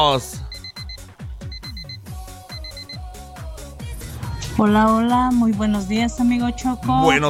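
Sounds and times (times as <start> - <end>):
speech: 0.0 - 0.5, 4.6 - 7.2
electronic alarm clock beeps in short high bursts: 0.5 - 3.0.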